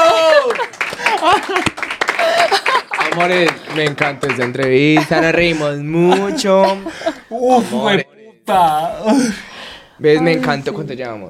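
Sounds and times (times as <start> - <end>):
laughter: 0.0 - 8.0
hand claps from a few people: 0.3 - 5.1
speech: 3.2 - 11.2.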